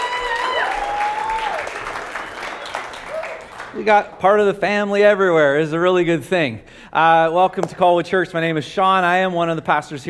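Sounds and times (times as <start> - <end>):
church congregation clapping and cheering: 0.0 - 4.2
shrill whistle from church congregation: 0.6 - 3.0
speech: 3.8 - 10.0.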